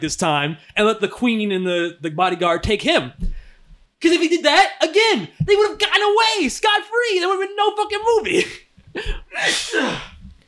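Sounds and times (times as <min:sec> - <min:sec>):
speech: 0:00.0 - 0:03.2, 0:04.0 - 0:10.1
person sneezing: 0:08.4 - 0:10.3.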